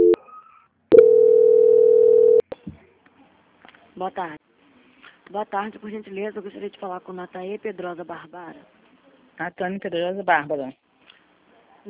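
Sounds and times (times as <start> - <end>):
telephone tone while a call is transferred: 0.0 - 0.2, 0.9 - 2.4
speech: 4.0 - 4.4, 5.3 - 8.8, 9.4 - 10.8.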